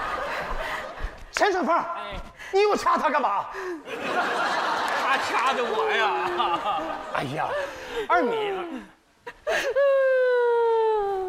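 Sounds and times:
laughter: 0:00.0 - 0:01.3, 0:03.8 - 0:11.0
speech: 0:01.4 - 0:10.0
person crying out in a drawn-out whimpering wail during a scuffle: 0:09.5 - 0:11.2.

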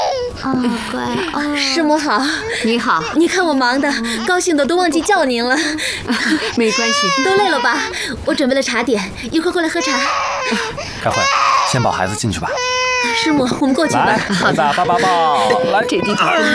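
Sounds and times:
small child crying from shyness of strangers: 0:00.0 - 0:05.4, 0:06.6 - 0:08.0, 0:09.6 - 0:16.5
adult voices speaking: 0:00.4 - 0:16.5
laughter: 0:13.9 - 0:16.5.

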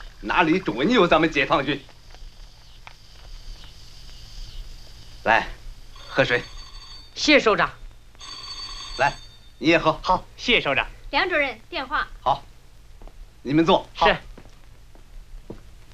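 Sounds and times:
speech: 0:00.2 - 0:01.9, 0:05.2 - 0:05.6, 0:06.2 - 0:06.5, 0:07.2 - 0:07.8, 0:09.0 - 0:12.5, 0:13.4 - 0:14.3
old-style telephone bell ringing: 0:05.9 - 0:09.8.

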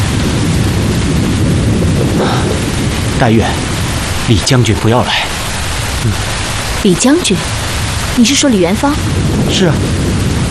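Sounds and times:
steady loud rain: 0:00.0 - 0:10.4
thunder rumbling: 0:00.0 - 0:10.4
speech: 0:03.2 - 0:03.7, 0:04.3 - 0:05.4, 0:06.0 - 0:07.6, 0:08.2 - 0:10.1.

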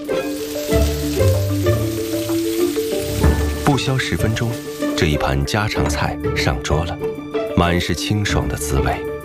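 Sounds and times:
water caltrops and water celery stir-frying in a wok: 0:00.0 - 0:06.0
speech: 0:03.8 - 0:09.1.

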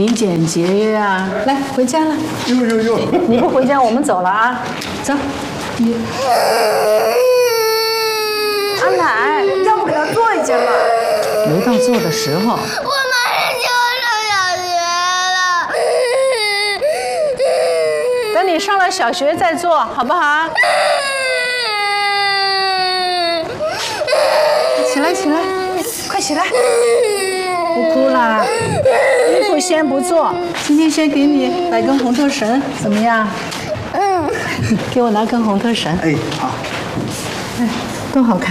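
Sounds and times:
speech: 0:00.0 - 0:07.3, 0:08.8 - 0:13.0, 0:18.6 - 0:21.0, 0:25.0 - 0:25.6, 0:26.2 - 0:27.1, 0:27.8 - 0:34.0, 0:34.6 - 0:36.7, 0:37.6 - 0:38.4
young girl crying after being refused new clothes: 0:06.2 - 0:18.6, 0:20.6 - 0:32.0, 0:33.7 - 0:34.6.

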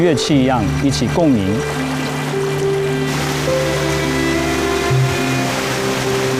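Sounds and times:
speech: 0:00.0 - 0:01.9
roar of rushing water from a waterfall between high mountain gorges: 0:00.0 - 0:06.3.

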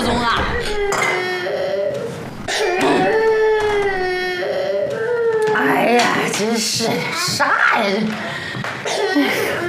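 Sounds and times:
child crying with loud wailing cries: 0:00.2 - 0:06.0
speech: 0:06.4 - 0:08.3, 0:09.2 - 0:09.6.

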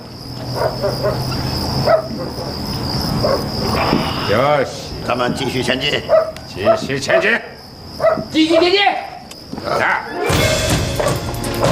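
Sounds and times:
speech: 0:00.4 - 0:07.6, 0:08.2 - 0:11.2
old dog barking excitedly: 0:00.5 - 0:02.6, 0:03.2 - 0:03.6, 0:06.0 - 0:08.8.

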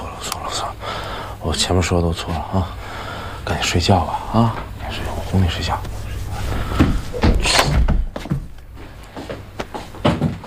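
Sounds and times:
speech: 0:01.4 - 0:06.0
quiet shuffling and faint movement: 0:04.2 - 0:10.4
door swinging open with knocks and thumps of handle and frame: 0:06.8 - 0:08.6.

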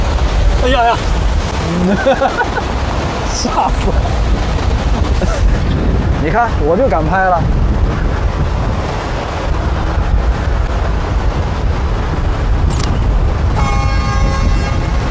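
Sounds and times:
heavy wind rumble: 0:00.0 - 0:15.0
speech: 0:00.6 - 0:02.7, 0:03.3 - 0:04.3, 0:06.2 - 0:08.1
laughter: 0:01.6 - 0:02.8
sustained tonal whine or horn of a train: 0:13.6 - 0:15.0.

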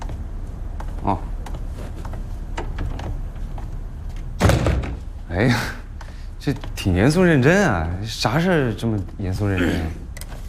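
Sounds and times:
low steady noise: 0:00.0 - 0:10.4
speech: 0:01.0 - 0:01.4, 0:05.4 - 0:05.8, 0:06.4 - 0:10.0
door shutting thud: 0:04.4 - 0:05.0.

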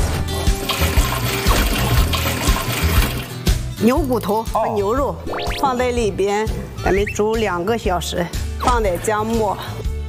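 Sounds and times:
water poured into a cooking pot for Shandong-style sa soup: 0:00.6 - 0:03.4
speech: 0:03.8 - 0:09.9.

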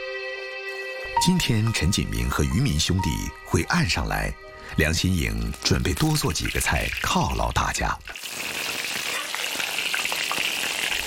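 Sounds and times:
speech: 0:01.2 - 0:08.6
dried fish frying in hot oil: 0:05.9 - 0:11.0.

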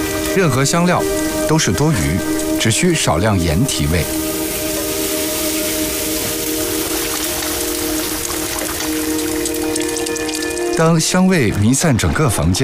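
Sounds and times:
speech: 0:00.4 - 0:04.3, 0:10.8 - 0:12.6
chicken stir-frying over high heat: 0:04.2 - 0:10.4.

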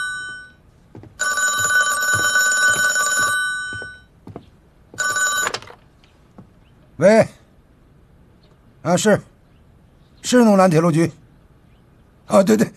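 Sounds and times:
telephone bell ringing: 0:00.0 - 0:00.6, 0:01.2 - 0:04.1, 0:05.0 - 0:05.8
speech: 0:07.0 - 0:07.3, 0:08.9 - 0:09.3, 0:10.3 - 0:11.2, 0:12.3 - 0:12.7.

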